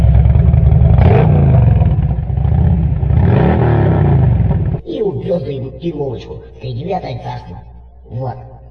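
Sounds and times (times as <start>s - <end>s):
motorcycle engine arriving and revving: 0.0s - 4.8s
speech: 5.9s - 8.5s.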